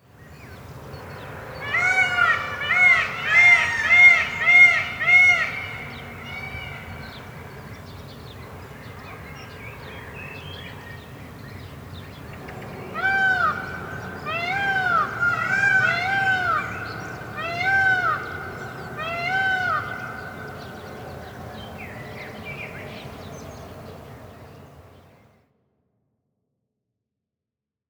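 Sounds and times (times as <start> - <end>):
peacocks calling in a bird park: 0.2 - 25.2.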